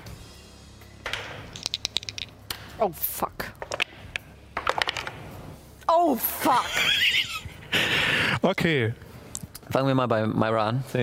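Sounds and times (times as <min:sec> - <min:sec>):
several dice clattering across a hard tabletop: 0:01.1 - 0:02.6, 0:03.5 - 0:04.0, 0:04.6 - 0:05.2
speech: 0:02.8 - 0:03.6, 0:06.0 - 0:09.0, 0:09.7 - 0:11.0
laughter: 0:06.5 - 0:08.4.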